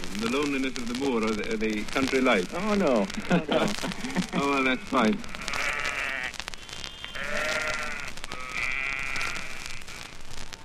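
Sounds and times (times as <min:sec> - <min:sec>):
speech: 0:00.2 - 0:05.8
laughter: 0:03.1 - 0:05.2
sheep bleating in the countryside: 0:04.0 - 0:10.2.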